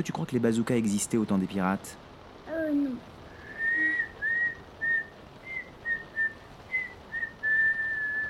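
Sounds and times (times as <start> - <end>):
speech: 0.0 - 2.1
faint steady hiss: 0.0 - 8.2
person whistling a simple melody: 3.5 - 8.2.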